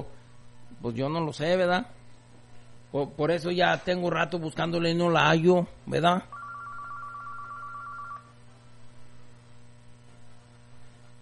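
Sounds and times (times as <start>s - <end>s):
low constant mains hum: 0.0s - 11.1s
speech: 0.8s - 2.0s, 2.9s - 6.4s
telephone ringing: 6.3s - 8.4s.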